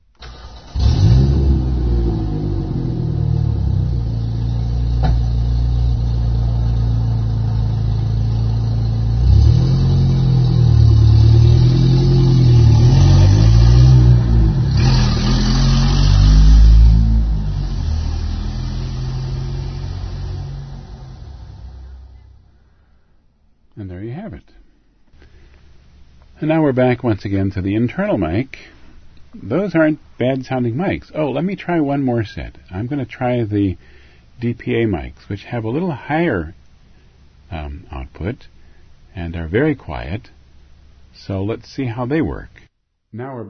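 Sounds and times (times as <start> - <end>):
truck engine idling with a deep steady rumble: 1.6 - 22.4
speech: 26.4 - 36.6, 37.5 - 38.5, 39.2 - 40.4, 41.2 - 43.4.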